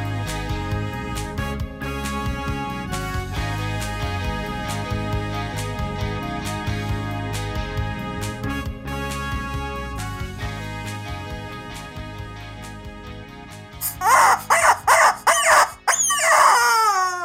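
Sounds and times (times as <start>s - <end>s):
music: 0.0s - 17.2s
rubber chicken squawking: 13.8s - 17.2s.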